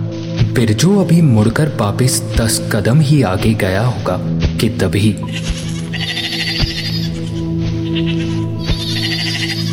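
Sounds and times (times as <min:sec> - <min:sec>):
speech: 0:00.6 - 0:06.2
flock of goats and sheep bleating: 0:05.2 - 0:09.7.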